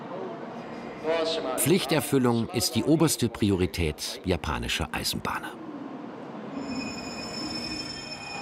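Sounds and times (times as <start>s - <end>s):
speech: 1.0s - 5.6s
Nozomi Shinkansen high-speed train running: 5.5s - 8.3s.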